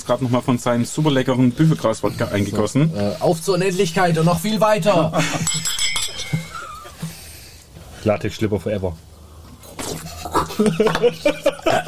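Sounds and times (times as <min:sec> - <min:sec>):
speech: 0:00.1 - 0:06.4, 0:08.0 - 0:09.1, 0:10.6 - 0:11.8
laughter: 0:05.0 - 0:05.6, 0:06.2 - 0:07.0, 0:09.9 - 0:11.8
glasses clinking in a toast: 0:05.2 - 0:07.0.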